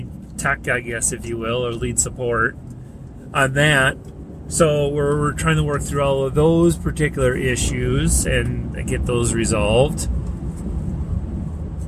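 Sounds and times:
heavy vehicle engine rumbling: 0:00.0 - 0:11.8
speech: 0:00.4 - 0:02.7, 0:03.3 - 0:10.2.

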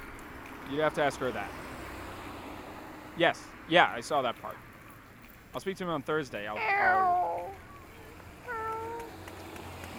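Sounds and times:
speech: 0:00.7 - 0:01.7, 0:03.2 - 0:04.7, 0:05.5 - 0:07.3
cat meowing: 0:06.6 - 0:07.6, 0:08.5 - 0:09.1.

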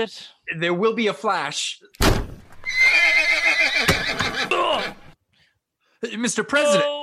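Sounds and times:
speech: 0:00.0 - 0:05.0, 0:06.0 - 0:07.0
horse hooves clopping: 0:02.5 - 0:05.1
horse whinnying, startled by a camera flash: 0:02.6 - 0:05.2.

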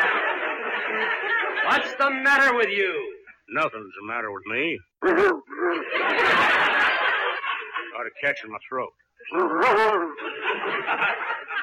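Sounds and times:
laughter: 0:00.0 - 0:02.5, 0:05.0 - 0:08.4, 0:09.3 - 0:11.6
speech: 0:00.9 - 0:06.9, 0:08.0 - 0:11.4
man imitating a dog yelp: 0:05.0 - 0:05.6, 0:09.3 - 0:10.2.

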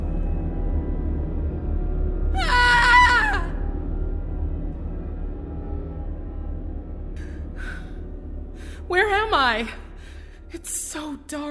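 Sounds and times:
steady low rumble: 0:00.0 - 0:11.5
woman screaming: 0:02.4 - 0:03.7
speech: 0:09.0 - 0:09.8, 0:10.5 - 0:11.5.

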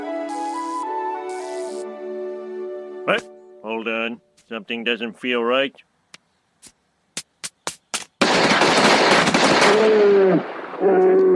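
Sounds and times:
speech: 0:03.1 - 0:05.9, 0:09.7 - 0:11.3
gunshots: 0:07.7 - 0:10.9
rapid continuous gunfire: 0:08.2 - 0:10.2.

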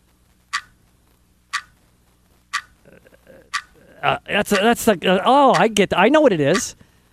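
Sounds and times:
clock ticking: 0:00.5 - 0:00.8, 0:01.5 - 0:01.8, 0:02.5 - 0:02.8, 0:03.5 - 0:06.8
speech: 0:02.9 - 0:06.8
person talking loudly: 0:04.0 - 0:06.8.

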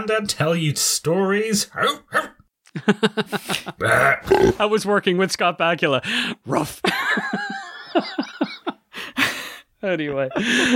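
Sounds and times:
speech: 0:00.0 - 0:08.4, 0:09.8 - 0:10.7
dog barking sharp yappy barks: 0:01.8 - 0:02.4
laughter: 0:02.7 - 0:04.0, 0:06.8 - 0:09.4, 0:10.1 - 0:10.7.

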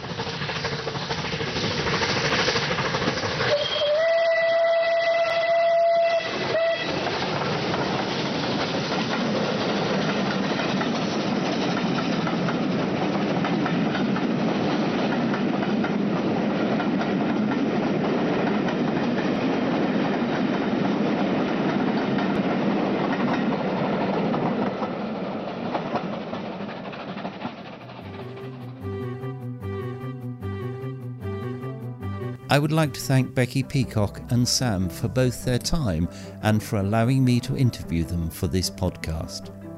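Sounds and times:
rhythmic clatter of locomotive wheels on track: 0:00.0 - 0:03.9, 0:06.2 - 0:28.1
locomotive running along the railway: 0:00.0 - 0:39.7
speech: 0:32.5 - 0:39.6.

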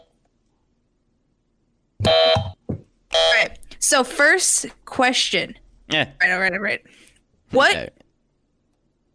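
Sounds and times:
game-show buzzer: 0:02.1 - 0:02.5
speech: 0:03.9 - 0:08.0.

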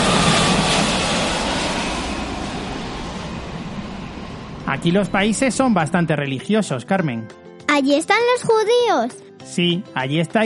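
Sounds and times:
airplane jet engine roaring while taking off: 0:00.0 - 0:05.8
speech: 0:04.7 - 0:10.4.

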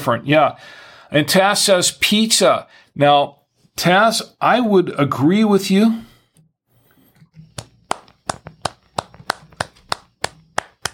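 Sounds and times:
speech: 0:00.0 - 0:06.1
person clapping hands: 0:07.6 - 0:10.9.

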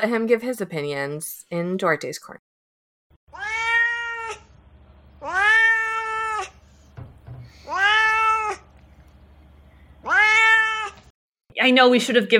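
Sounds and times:
speech: 0:00.0 - 0:02.5, 0:11.6 - 0:12.3
cat meowing: 0:03.3 - 0:04.5, 0:05.2 - 0:06.6, 0:07.6 - 0:08.7, 0:10.0 - 0:11.1
low steady hum: 0:06.5 - 0:10.1.

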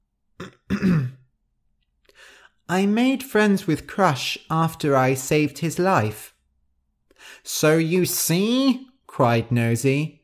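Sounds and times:
throat clearing: 0:00.4 - 0:01.3
speech: 0:02.7 - 0:06.3, 0:07.2 - 0:10.2.

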